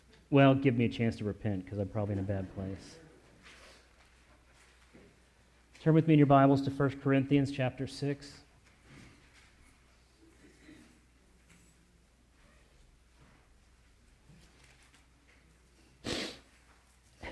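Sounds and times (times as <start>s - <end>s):
speech: 0.3s - 3.0s, 5.8s - 8.4s
faint shuffling in a church audience during a sermon: 1.4s - 6.2s, 8.3s - 17.2s
people sniffling in a church audience: 3.4s - 4.5s, 8.9s - 11.2s, 15.8s - 17.2s.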